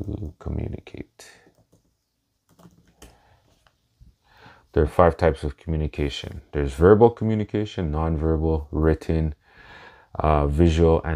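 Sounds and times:
speech: 0.0s - 1.4s, 4.7s - 9.4s, 10.1s - 11.1s
typing a search query on a computer keyboard: 1.5s - 3.1s.

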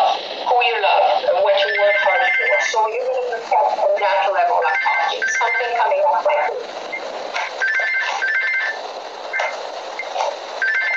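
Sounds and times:
band-limited noise: 0.0s - 10.9s
telephone ringing in warbling electronic trills: 1.6s - 2.8s, 4.6s - 6.5s, 7.6s - 9.6s, 10.6s - 10.9s.

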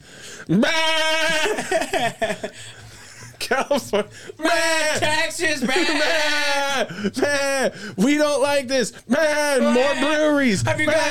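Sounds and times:
speech: 0.5s - 2.8s, 3.5s - 11.1s
goat bleating loudly: 9.6s - 11.1s.

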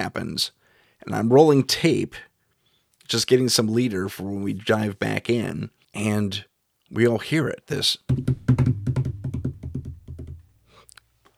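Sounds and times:
speech: 0.0s - 2.3s, 3.1s - 8.7s
hands tapping on a desk imitating galloping hooves: 8.1s - 10.5s.

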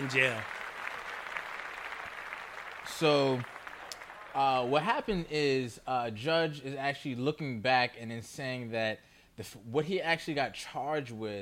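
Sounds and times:
speech: 0.0s - 0.6s, 3.0s - 3.6s, 4.4s - 11.4s
group of hands clapping: 0.0s - 4.9s.

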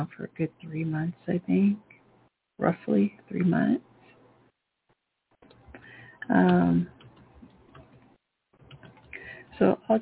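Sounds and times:
speech: 0.0s - 1.9s, 2.6s - 3.9s, 6.3s - 7.0s, 9.6s - 10.0s
typing on a computer keyboard: 6.9s - 9.2s.

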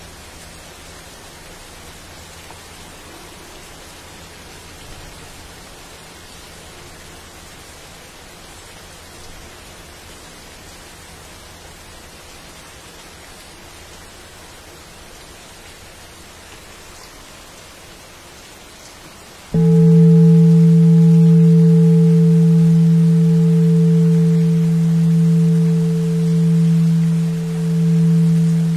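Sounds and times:
soft even rain hiss in a dense forest: 0.0s - 28.7s
loud steady low hum with a ringing upper tone: 19.6s - 28.7s.

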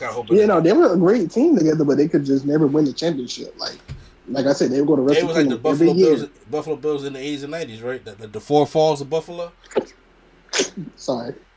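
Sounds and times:
speech: 0.0s - 11.5s
sneeze: 10.5s - 10.9s.

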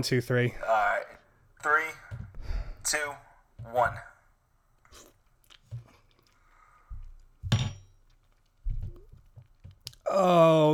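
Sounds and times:
speech: 0.0s - 2.0s, 2.8s - 4.1s, 10.1s - 10.7s
person biting and chewing crunchy food: 4.9s - 6.4s.

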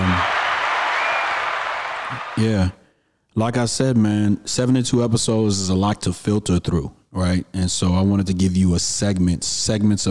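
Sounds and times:
recorded crowd applauding: 0.0s - 2.5s
speech: 2.4s - 2.8s, 3.4s - 10.0s.

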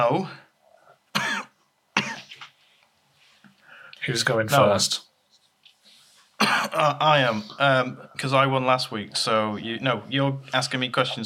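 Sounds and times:
speech: 0.0s - 0.4s, 4.0s - 5.1s, 6.4s - 11.2s
harsh coughs trailing into raspy throat sound: 1.1s - 2.5s, 6.4s - 7.0s.

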